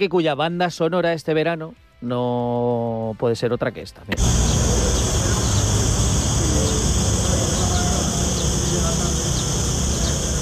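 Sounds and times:
speech: 0.0 - 4.6
bird calls: 4.2 - 10.3
cicadas chirring in an outdoor park: 4.2 - 10.3.

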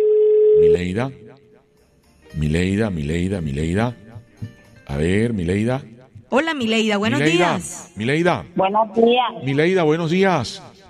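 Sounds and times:
steady mid-pitched telephone tone while redialing a caller: 0.0 - 0.8
speech: 0.6 - 1.2, 2.3 - 10.7.

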